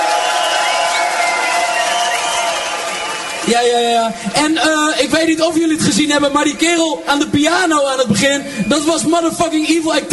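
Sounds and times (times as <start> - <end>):
large crowd cheering and whooping: 0.0 - 3.9
large crowd clapping: 0.0 - 4.4
speech: 3.5 - 10.1.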